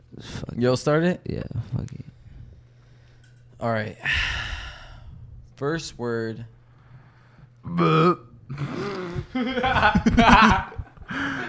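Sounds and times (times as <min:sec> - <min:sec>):
speech: 0:00.6 - 0:02.1, 0:03.6 - 0:04.5, 0:05.6 - 0:06.6, 0:07.6 - 0:11.3
loud burp: 0:07.7 - 0:09.1
people chuckling and laughing: 0:09.3 - 0:11.4.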